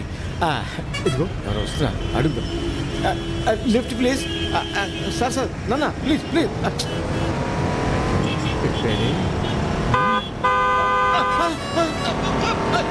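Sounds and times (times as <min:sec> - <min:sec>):
speech: 0:00.4 - 0:07.2, 0:08.8 - 0:09.6
car horn honking: 0:00.9 - 0:05.5, 0:08.2 - 0:12.9.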